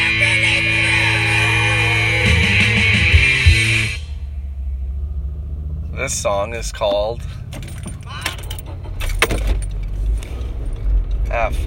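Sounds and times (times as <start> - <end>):
car engine restarted at a red light: 0.0 - 11.6
speech: 6.1 - 7.4, 11.3 - 11.6
keys jangling in a car ignition: 7.1 - 11.4.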